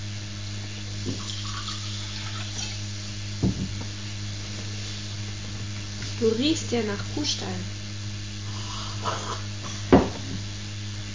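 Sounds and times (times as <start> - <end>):
faint hum: 0.0 - 11.1
speech: 1.0 - 1.3, 6.2 - 7.8, 9.0 - 9.5
water pouring into a cup: 1.1 - 2.8.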